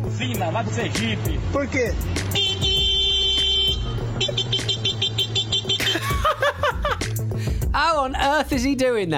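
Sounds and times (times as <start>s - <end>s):
speech: 0.1s - 2.7s, 6.2s - 9.1s
man vocally imitating a car horn: 2.3s - 6.1s
laughter and chuckling: 5.8s - 7.0s.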